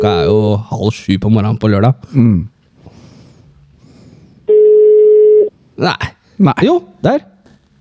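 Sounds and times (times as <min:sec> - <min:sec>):
speech: 0:00.0 - 0:02.5, 0:05.8 - 0:07.3
electronic ringback tone of outgoing phone call: 0:04.5 - 0:05.5.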